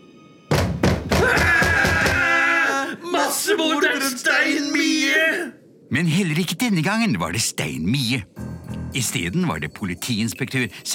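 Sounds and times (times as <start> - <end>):
sharp knocks on a door in the evening: 0.5 - 2.2
speech: 3.3 - 10.9
sustained ringing music-like tone: 8.4 - 10.6.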